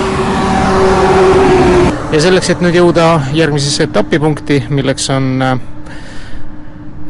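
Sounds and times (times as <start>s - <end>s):
highway traffic roaring at the Loksa road junction in Estonia: 0.0s - 7.0s
speech: 2.2s - 6.0s.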